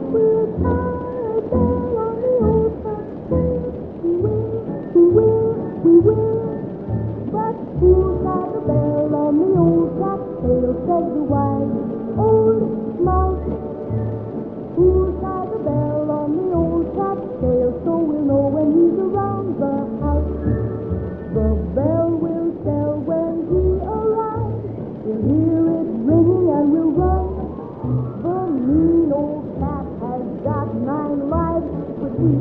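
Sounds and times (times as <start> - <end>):
Halloween oldies music playing in another room: 0.0 - 32.3.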